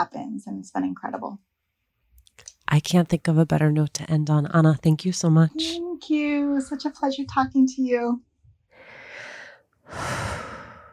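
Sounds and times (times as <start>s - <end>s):
speech: 0.4s - 1.5s, 2.7s - 8.3s, 9.9s - 10.3s
person taking a deep breath: 8.7s - 10.9s.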